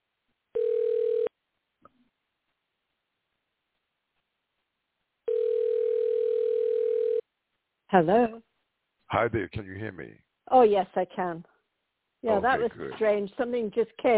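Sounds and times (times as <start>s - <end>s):
telephone dial tone while a call is redialled: 0.6s - 1.3s, 5.3s - 7.2s
speech: 7.9s - 8.4s, 9.1s - 11.5s, 12.2s - 14.1s.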